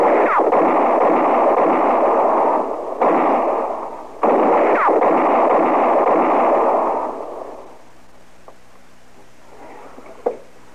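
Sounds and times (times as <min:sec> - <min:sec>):
gunfire from up in the trees during a shootout: 0:00.0 - 0:07.8.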